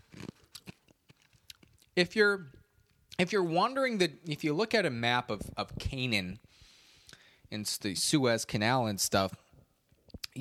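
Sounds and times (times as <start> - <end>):
crunching and chewing of an ice cube: 0.1 - 2.0
speech: 2.0 - 2.6, 3.2 - 6.6, 7.5 - 9.4.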